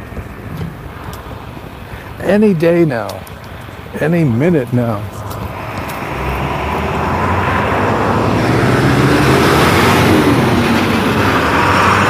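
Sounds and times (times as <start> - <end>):
speech: 2.2 - 5.2
UPS delivery truck driving past: 3.8 - 12.0.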